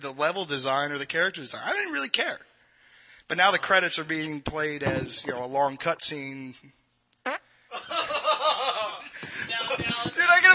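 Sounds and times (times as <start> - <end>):
speech: 0.0 - 2.5, 3.3 - 8.1
short buzzy fart against the microphone: 7.2 - 7.5
laughter: 7.7 - 10.1.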